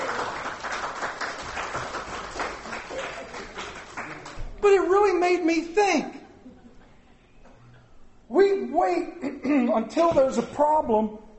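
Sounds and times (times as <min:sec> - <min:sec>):
audience crowd clapping: 0:00.0 - 0:04.9
speech: 0:04.6 - 0:06.2, 0:08.8 - 0:11.3.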